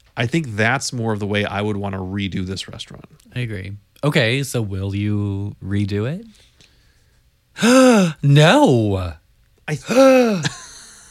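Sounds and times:
speech: 0:00.2 - 0:06.5, 0:07.6 - 0:10.6
loud theatrical gasp: 0:07.6 - 0:08.2, 0:09.8 - 0:10.5.

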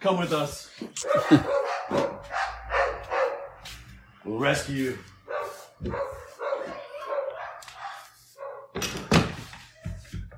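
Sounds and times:
speech: 0:00.0 - 0:02.1, 0:04.3 - 0:05.1, 0:05.8 - 0:06.2
dogs barking: 0:01.0 - 0:03.9, 0:05.2 - 0:08.8.

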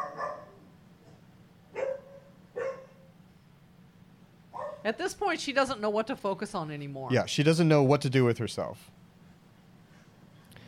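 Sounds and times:
pack of dogs barking: 0:00.0 - 0:03.2, 0:04.5 - 0:04.9
speech: 0:04.8 - 0:09.0.

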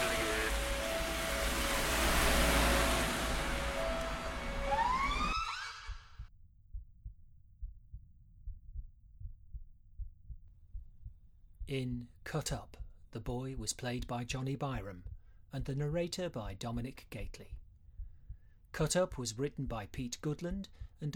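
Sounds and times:
dense roaring wash: 0:00.0 - 0:05.4
wailing sirens: 0:00.0 - 0:06.1
slow steady low thumping: 0:00.0 - 0:11.7
speech: 0:11.7 - 0:17.6, 0:18.7 - 0:21.1.

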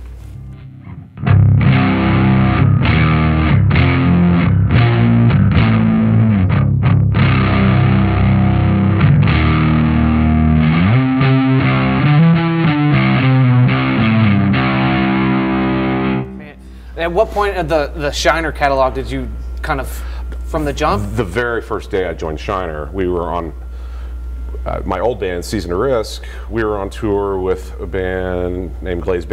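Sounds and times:
heavily distorted stringed instrument in unison C-G-C tuning played with thumb and finger: 0:00.5 - 0:16.5
speech: 0:17.1 - 0:23.6, 0:24.6 - 0:29.3.

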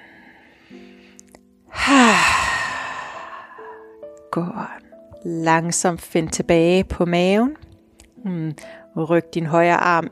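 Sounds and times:
slow deep breathy exhale with a soft voiced sigh: 0:00.0 - 0:04.0
speech: 0:04.4 - 0:07.6, 0:08.2 - 0:10.0.

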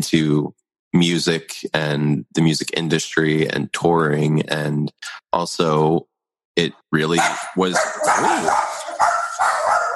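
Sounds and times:
speech: 0:00.0 - 0:08.7
dogs barking at the mailman: 0:07.2 - 0:09.9.

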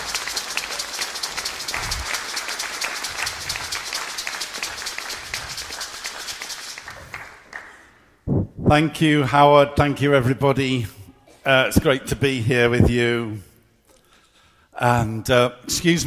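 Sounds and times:
large audience applauding: 0:00.0 - 0:08.0
speech: 0:08.7 - 0:13.5, 0:14.8 - 0:16.0.

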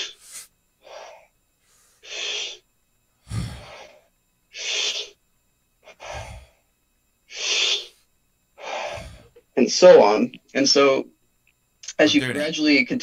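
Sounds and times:
rapid forceful breathing exercise breaths with sharp inhales and gusty exhales: 0:00.0 - 0:02.6, 0:03.2 - 0:05.0, 0:05.9 - 0:06.6, 0:08.6 - 0:09.4
speech: 0:09.6 - 0:11.2, 0:12.0 - 0:13.0.

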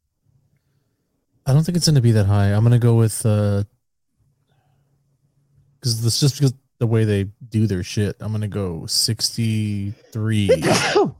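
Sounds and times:
speech: 0:01.5 - 0:03.8, 0:05.8 - 0:11.1
person sneezing: 0:10.5 - 0:11.1.

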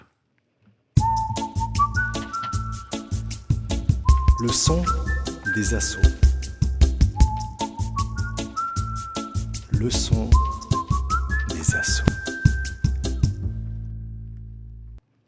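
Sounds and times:
radio jingle with whistled melody over rhythmic backing: 0:01.0 - 0:03.4, 0:04.0 - 0:13.3
speech: 0:04.4 - 0:06.2, 0:09.8 - 0:10.5, 0:11.7 - 0:12.1.

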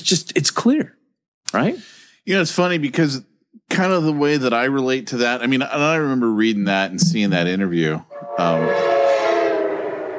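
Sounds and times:
speech: 0:00.0 - 0:09.0
train horn blaring a sustained chord: 0:08.1 - 0:10.1.

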